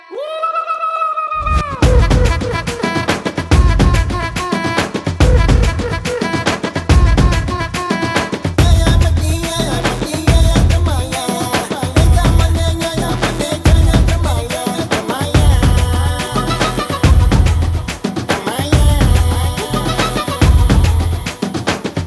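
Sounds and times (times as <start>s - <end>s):
drum beats: 1.5s - 22.0s.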